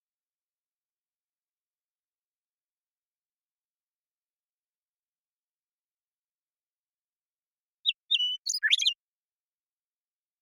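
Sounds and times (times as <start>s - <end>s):
Western meadowlark Sturnella neglecta singing in Washington, United States: 7.8s - 9.0s.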